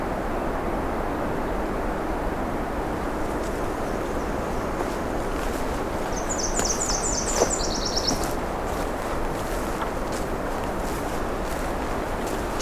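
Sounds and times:
steady rushing background noise: 0:00.0 - 0:12.6
Nashville Warbler singing at a park edge on a warm June morning: 0:03.2 - 0:12.6.

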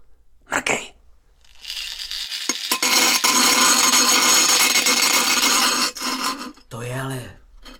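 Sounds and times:
angle grinder cutting into iron: 0:01.4 - 0:06.7.

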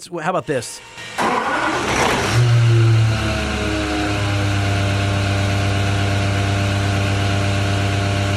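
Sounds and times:
speech: 0:00.0 - 0:02.2
supercharged car engine idling: 0:00.9 - 0:08.3.

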